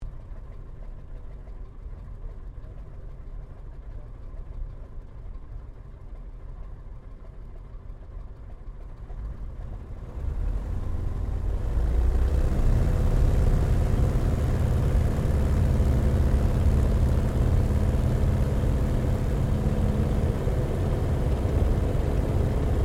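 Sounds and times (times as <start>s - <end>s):
replica biplane taking off heard from the interior: 9.2s - 22.8s.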